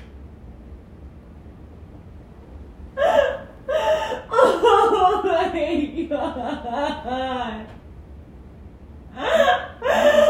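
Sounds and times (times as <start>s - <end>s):
person sobbing uncontrollably with gasping breaths: 3.0s - 7.7s, 9.1s - 10.2s.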